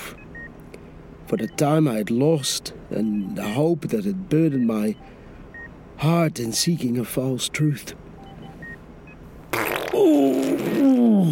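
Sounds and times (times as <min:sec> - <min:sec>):
speech: 0:01.3 - 0:05.2, 0:06.0 - 0:08.0, 0:10.0 - 0:11.3
loud buzzing brassy fart: 0:09.4 - 0:11.3.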